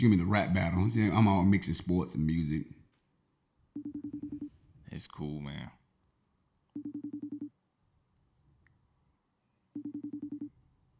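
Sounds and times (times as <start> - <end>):
speech: 0.0 - 2.8, 5.0 - 5.8
phone call ringback tone before going to voicemail: 3.8 - 4.6, 6.8 - 7.5, 9.7 - 10.6.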